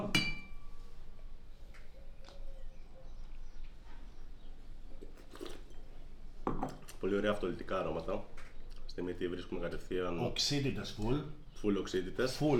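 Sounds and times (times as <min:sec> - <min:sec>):
wine glasses of Chardonnay Blanc de Blancs clinking in a toast: 0:00.0 - 0:00.8
low hum: 0:00.0 - 0:12.5
speech: 0:07.0 - 0:08.4, 0:09.0 - 0:12.5.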